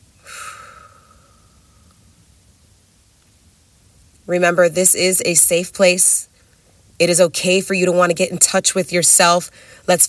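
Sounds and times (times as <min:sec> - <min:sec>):
deep breath drawn in and released: 0:00.2 - 0:02.1, 0:09.5 - 0:09.9
speech: 0:04.3 - 0:06.3, 0:07.0 - 0:10.0.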